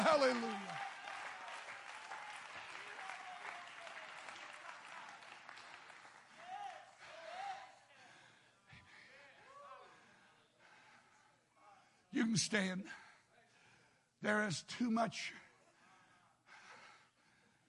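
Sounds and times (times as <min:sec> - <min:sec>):
audience clapping hands: 0:00.0 - 0:07.7
speech: 0:12.2 - 0:13.0, 0:14.2 - 0:15.4.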